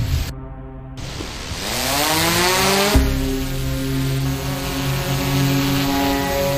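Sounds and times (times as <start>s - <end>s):
police drone propellers whirring at takeoff at night beside the Yangtze River: 0.0s - 6.5s.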